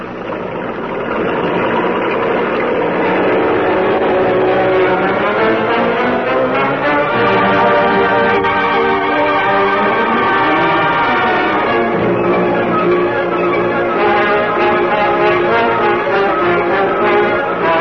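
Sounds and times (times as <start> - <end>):
car engine driving along a road: 0.0 - 17.7.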